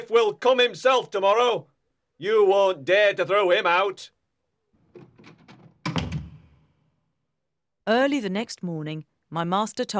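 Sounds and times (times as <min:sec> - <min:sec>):
speech: 0:00.0 - 0:04.2, 0:07.9 - 0:09.9
door swinging shut with a solid thud: 0:04.9 - 0:06.7.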